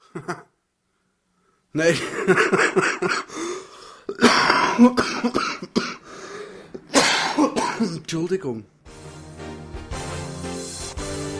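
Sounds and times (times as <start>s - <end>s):
speech: 0.2s - 0.5s, 1.7s - 3.5s, 4.8s - 5.8s, 8.1s - 8.8s
person coughing: 2.1s - 3.3s, 4.1s - 6.1s, 6.8s - 8.0s
person clearing throat: 4.1s - 6.0s, 6.9s - 8.0s.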